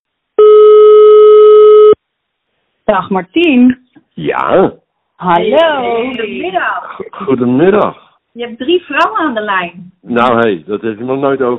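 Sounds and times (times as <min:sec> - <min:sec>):
ringback tone of an outgoing telephone call: 0:00.4 - 0:02.0
speech: 0:02.9 - 0:11.5.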